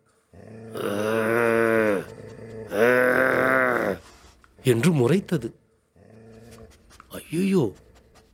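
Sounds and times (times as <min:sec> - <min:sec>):
person imitating with their voice the growl of a dog: 0:00.3 - 0:04.0
speech: 0:04.7 - 0:05.6, 0:07.3 - 0:07.9.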